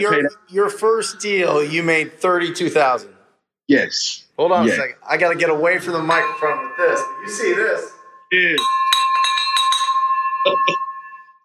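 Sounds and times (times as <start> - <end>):
speech: 0.0 - 8.8
bright handbell rung in celebration: 5.8 - 11.4.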